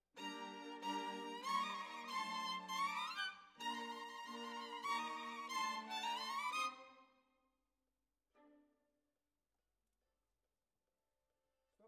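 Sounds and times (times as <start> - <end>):
violins: 0.2 - 7.0.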